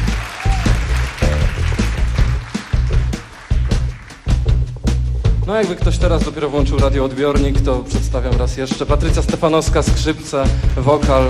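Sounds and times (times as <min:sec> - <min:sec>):
audience applauding at a live music event: 0:00.0 - 0:04.6, 0:10.0 - 0:11.2
speech: 0:05.5 - 0:11.2.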